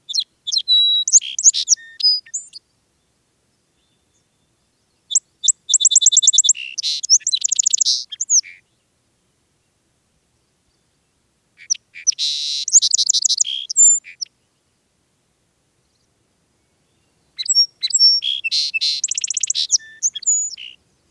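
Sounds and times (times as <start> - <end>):
song sparrow singing: 0.0 - 2.7, 3.8 - 8.9, 11.6 - 14.6, 15.8 - 21.0.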